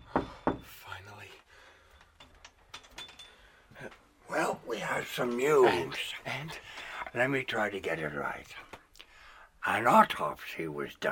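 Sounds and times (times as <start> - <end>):
knocking on a wooden door: 0.0 - 0.7
speech: 3.8 - 8.7, 9.6 - 11.1.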